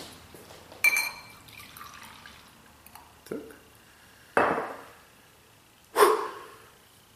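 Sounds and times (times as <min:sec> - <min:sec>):
glass clinking and ringing: 0:00.8 - 0:01.7
fizzy kombucha trickling into a glass: 0:01.3 - 0:03.2
speech: 0:03.3 - 0:03.6.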